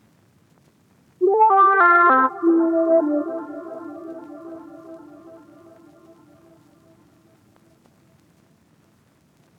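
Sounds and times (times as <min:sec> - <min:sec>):
R&B lead melody loop in D minor: 0:01.2 - 0:06.2.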